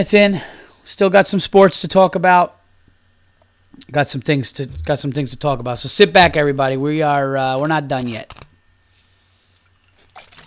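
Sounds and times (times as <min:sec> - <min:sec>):
speech: 0:00.0 - 0:02.6, 0:03.9 - 0:08.4
sipping seltzer water: 0:09.6 - 0:10.4.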